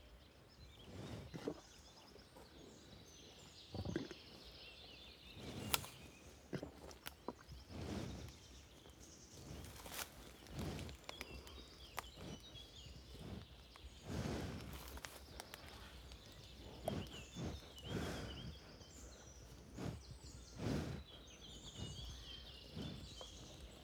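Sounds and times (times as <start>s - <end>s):
birdsong in marshes: 0.0s - 23.8s
curious cow puffing breaths while feeding: 5.3s - 23.8s.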